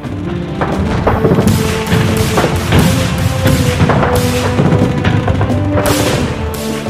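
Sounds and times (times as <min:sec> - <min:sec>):
loud dense mine explosions in a battle: 0:00.4 - 0:06.7
sharp cracks: 0:00.6 - 0:06.8.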